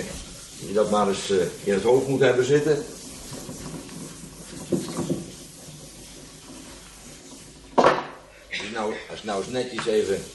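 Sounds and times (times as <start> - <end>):
wiping chalk writing off a board: 0.0 - 10.3
speech: 0.7 - 3.0, 9.2 - 10.3.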